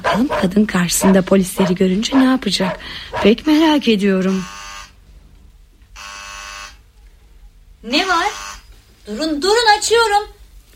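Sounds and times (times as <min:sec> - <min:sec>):
speech: 0:00.1 - 0:04.6, 0:07.8 - 0:08.3, 0:09.1 - 0:10.4
doorbell buzzer at a front door: 0:04.3 - 0:04.9, 0:06.0 - 0:06.8, 0:08.2 - 0:08.6.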